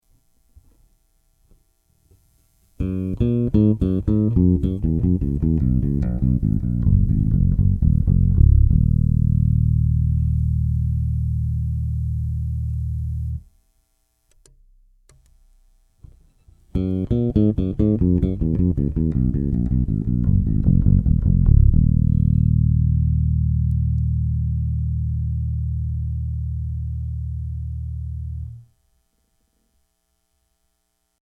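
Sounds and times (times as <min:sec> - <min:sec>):
doubles hum on five-string instrument: 0:02.8 - 0:13.5, 0:16.8 - 0:28.7.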